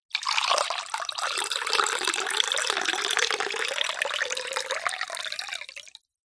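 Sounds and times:
water pouring slowly into a small drinking glass: 0:00.1 - 0:06.1.

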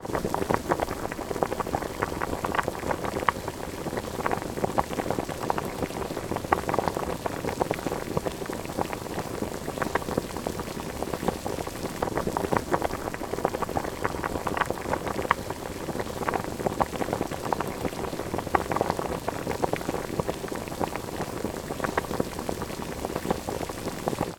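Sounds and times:
rice or potatoes boiling in frothing water: 0:00.0 - 0:24.3.

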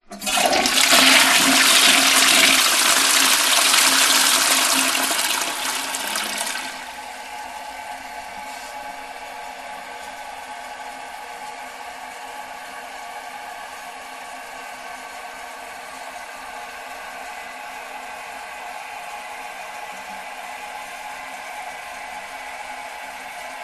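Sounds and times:
modern household toilet flush: 0:00.0 - 0:07.1.

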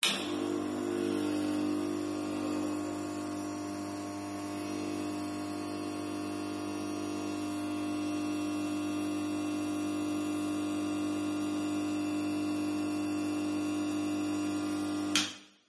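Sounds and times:
industrial warehouse light starter: 0:00.0 - 0:05.0
industrial warehouse light turning on: 0:00.0 - 0:05.4
industrial warehouse light buzzing hum: 0:00.0 - 0:15.2.

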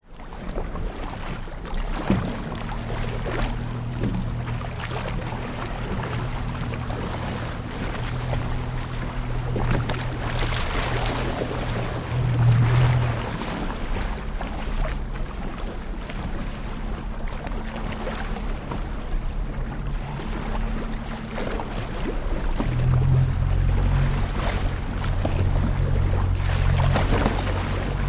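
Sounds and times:
16 ft fiberglass boat driving slowly on slightly choppy sea: 0:00.0 - 0:28.0
outboard motor on 16 ft fiberglass boat stopping and starting: 0:00.0 - 0:28.0.

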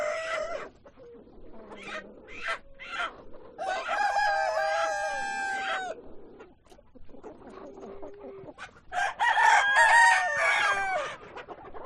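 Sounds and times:
chickens clucking at a chicken farm: 0:00.0 - 0:11.8
rooster crowing at a chicken farm: 0:03.6 - 0:06.0, 0:08.9 - 0:11.1.

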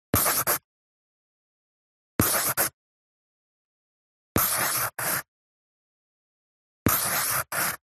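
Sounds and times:
pencil handwriting in a book: 0:00.2 - 0:00.7, 0:02.2 - 0:02.8, 0:04.4 - 0:05.3, 0:06.9 - 0:07.8.

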